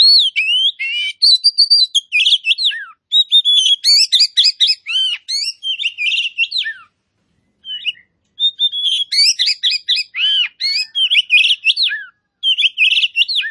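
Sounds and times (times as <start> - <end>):
Oriental magpie-robin singing vigorously: 0.0 - 6.9, 7.6 - 13.4.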